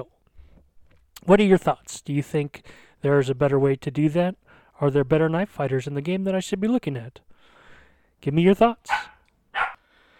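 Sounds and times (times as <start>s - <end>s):
speech: 1.2s - 7.3s, 8.2s - 9.1s
puppy barking: 8.9s - 9.8s.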